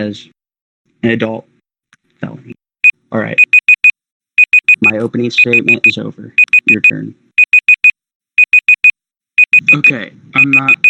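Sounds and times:
speech: 0.0s - 0.4s, 1.0s - 1.5s, 2.2s - 3.5s, 4.9s - 7.2s, 9.9s - 10.8s
debate timer alarm beeping: 2.8s - 10.8s.

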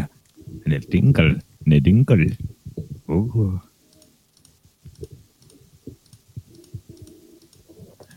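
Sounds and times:
speech: 0.7s - 2.5s, 3.1s - 3.7s
man typing on computer keyboard: 3.9s - 8.1s.

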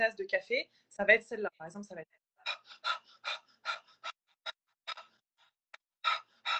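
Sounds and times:
speech: 0.0s - 3.0s
rapid energizing breaths through the mouth: 2.4s - 6.5s.

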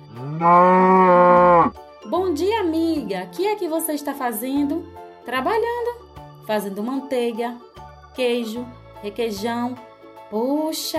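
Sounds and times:
cow mooing: 0.1s - 1.8s
speech: 0.2s - 5.9s, 6.5s - 10.9s.

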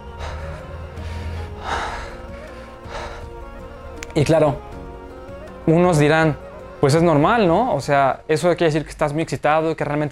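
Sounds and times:
person imitating shaky nervous breathing: 0.0s - 4.0s
speech: 4.2s - 4.7s, 5.6s - 10.1s.

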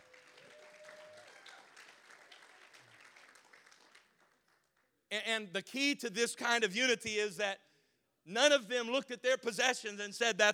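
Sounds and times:
audience clapping hands: 0.0s - 5.0s
speech: 5.1s - 10.5s.

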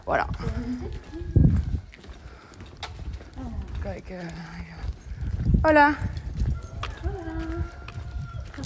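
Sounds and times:
speech: 0.1s - 1.3s, 3.9s - 4.9s, 5.7s - 6.2s
rooster on an upper floor crowing: 6.5s - 8.6s.

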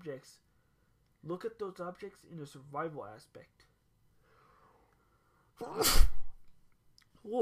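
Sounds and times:
speech: 0.0s - 0.5s, 1.2s - 3.7s, 5.6s - 6.2s
human sneeze: 5.6s - 6.4s.

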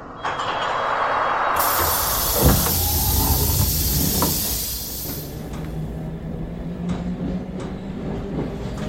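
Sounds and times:
London Underground District Line train rumbling: 0.0s - 8.8s
loud hiss of air from underground train: 1.6s - 6.0s.

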